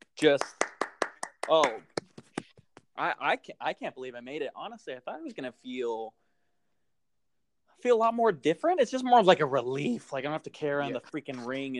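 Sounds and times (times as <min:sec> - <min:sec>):
hand claps congratulating a man on his engagement: 0:00.0 - 0:02.9
speech: 0:00.2 - 0:00.6, 0:01.5 - 0:01.9, 0:03.0 - 0:06.2, 0:07.8 - 0:11.7.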